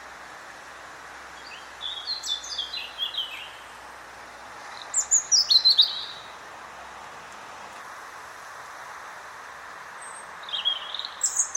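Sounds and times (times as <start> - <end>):
continuous background noise: 0.0 - 11.5
European robin Erithacus rubecula song: 1.3 - 3.8, 4.6 - 6.4, 10.0 - 11.5.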